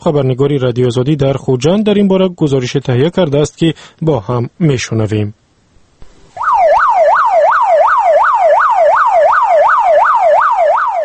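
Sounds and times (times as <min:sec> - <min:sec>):
speech: 0:00.0 - 0:05.4
low noise: 0:00.0 - 0:11.0
ambulance siren yelping on the move: 0:06.3 - 0:11.0.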